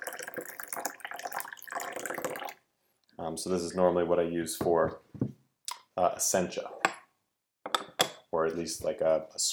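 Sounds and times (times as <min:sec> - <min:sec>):
hot water pouring into a teapot: 0:00.0 - 0:02.6
speech: 0:03.3 - 0:05.0, 0:06.0 - 0:06.8, 0:08.4 - 0:09.5.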